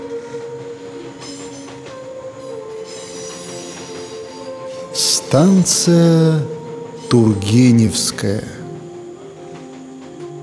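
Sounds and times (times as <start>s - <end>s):
metro train wheel squeals: 0.0s - 5.0s
metro train pulling away: 0.0s - 10.4s
speech: 5.0s - 8.6s.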